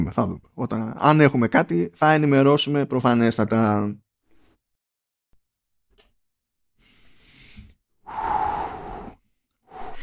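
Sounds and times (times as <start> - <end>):
speech: 0.0 - 4.0
deep breathing: 6.8 - 10.0.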